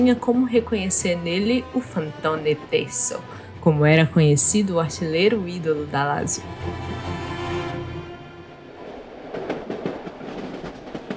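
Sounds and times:
speech: 0.0 - 7.1
train rumbling along the rails in Italy: 4.3 - 11.1.

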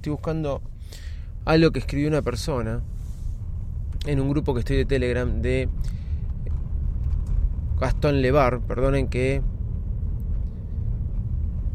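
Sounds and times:
speech: 0.0 - 0.7, 1.4 - 3.0, 4.0 - 6.0, 7.8 - 9.5
car driving and braking to a stop, heard from inside: 0.0 - 11.7.

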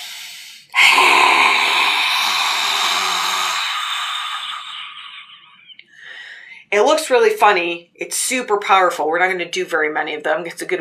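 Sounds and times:
forceful breathy exhale from the mouth: 0.0 - 3.9
speech: 6.7 - 10.7.

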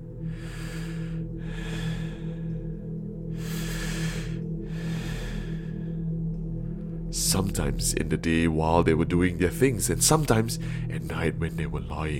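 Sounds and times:
constant low droning hum: 0.0 - 12.1
heavy rasping gasping breaths: 0.3 - 6.0
speech: 7.3 - 12.1.

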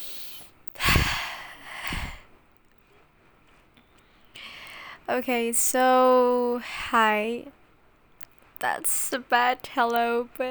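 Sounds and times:
forceful breathy exhalations while catching breath: 0.0 - 2.3
speech: 5.1 - 7.6, 8.6 - 10.5.

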